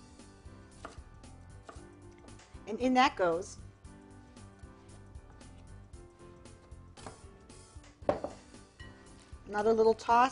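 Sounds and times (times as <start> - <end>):
knife chopping red onion on a board: 0.7 - 1.9, 8.1 - 8.4
speech: 2.7 - 3.6, 9.5 - 10.2.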